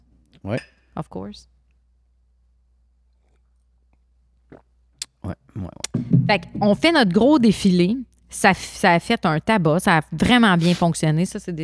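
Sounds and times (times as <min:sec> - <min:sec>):
speech: 0:00.4 - 0:01.5, 0:05.3 - 0:11.6
soft slurping sip of coffee: 0:03.1 - 0:03.8.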